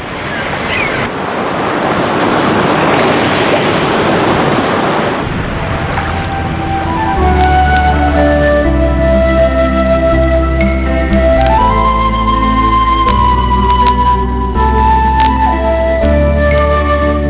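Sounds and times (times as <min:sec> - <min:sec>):
ocean waves washing against rocky shore: 0:00.0 - 0:17.2
low sustained tonal hum: 0:05.2 - 0:17.2.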